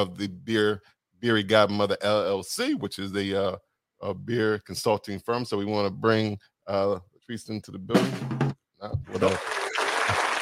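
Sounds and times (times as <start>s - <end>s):
speech: 0.0s - 10.2s
applause: 9.1s - 10.4s.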